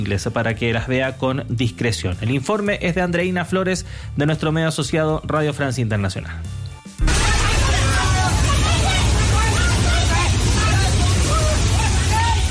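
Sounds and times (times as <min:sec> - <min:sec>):
speech: 0:00.0 - 0:06.6
faint shouting voices: 0:07.0 - 0:12.4
mud and debris torrent roaring through buildings: 0:07.0 - 0:12.4.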